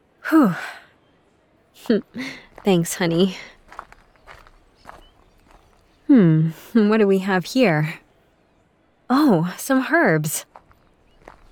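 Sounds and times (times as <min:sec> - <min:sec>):
speech: 0:00.3 - 0:00.8, 0:01.8 - 0:03.6, 0:06.1 - 0:08.0, 0:09.1 - 0:10.5
soft footsteps of someone walking around: 0:01.8 - 0:06.1, 0:10.3 - 0:11.5.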